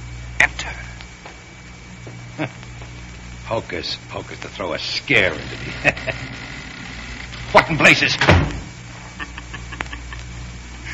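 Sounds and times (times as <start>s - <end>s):
speech: 2.4s - 2.6s, 3.5s - 6.5s, 7.5s - 8.6s
front door slamming shut: 5.4s - 8.8s
laughter: 5.6s - 6.2s, 9.1s - 10.9s.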